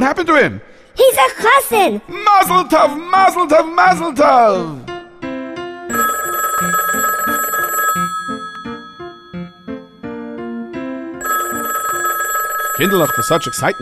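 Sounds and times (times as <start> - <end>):
speech: 0.0 - 4.9, 12.8 - 13.8
loud metallic telephone bell ringing: 5.9 - 10.2, 11.2 - 13.8.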